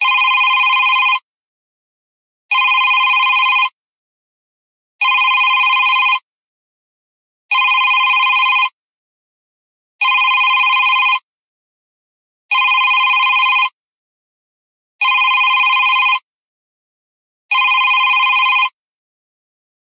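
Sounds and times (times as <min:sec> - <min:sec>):
digital mobile phone ringtone: 0:00.0 - 0:01.2, 0:02.5 - 0:03.7, 0:05.0 - 0:06.2, 0:07.5 - 0:08.7, 0:10.0 - 0:11.2, 0:12.5 - 0:13.7, 0:15.0 - 0:16.2, 0:17.5 - 0:18.8.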